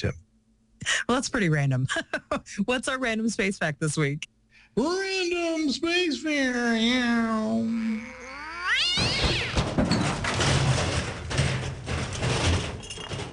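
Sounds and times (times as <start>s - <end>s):
speech: 0.0s - 0.2s, 0.8s - 8.2s
cat yowling: 6.9s - 9.6s
faint meow-like cries: 7.0s - 9.6s
loud noisy clatter and rumbling: 9.0s - 13.3s.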